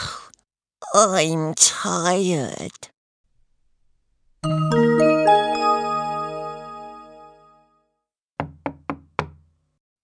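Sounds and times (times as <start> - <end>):
speech: 0.9 - 2.9
ringing chime melody: 4.5 - 7.7
crisp knocks on a door: 8.4 - 9.5.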